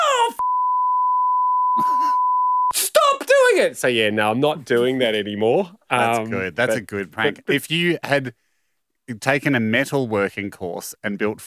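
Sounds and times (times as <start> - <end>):
censor bleep: 0.4 - 2.7
speech: 3.6 - 8.4, 9.1 - 11.4.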